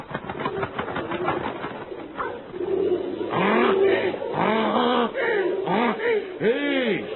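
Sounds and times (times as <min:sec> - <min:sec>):
pigeon wings flapping: 0:00.0 - 0:03.8
pigeons cooing: 0:00.3 - 0:07.1.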